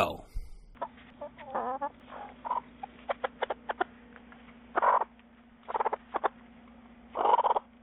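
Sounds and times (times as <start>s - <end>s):
steady low hum: 0.0s - 7.8s
backyard chickens clucking and squawking at a coop: 0.8s - 4.0s, 4.7s - 6.4s, 7.1s - 7.8s.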